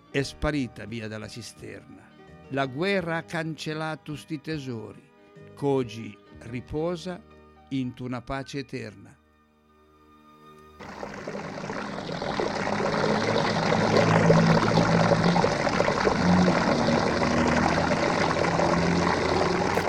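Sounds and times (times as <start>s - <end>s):
speech: 0.1s - 9.2s
water splashing and running from a street fountain over an inclined brick: 10.8s - 19.8s.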